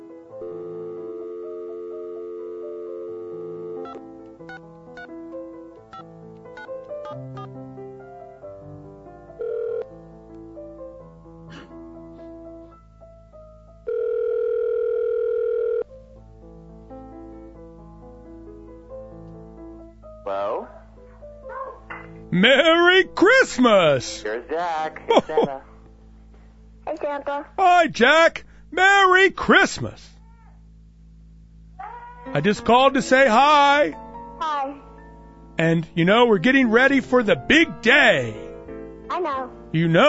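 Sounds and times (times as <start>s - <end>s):
loud sustained phone tone: 0.0s - 4.0s, 9.4s - 9.9s, 13.8s - 15.9s
telephone dial tone: 0.3s - 4.6s, 9.4s - 9.9s, 13.8s - 15.9s
speech: 22.4s - 25.7s, 27.1s - 30.1s, 32.4s - 34.0s, 35.6s - 38.4s, 39.2s - 40.0s.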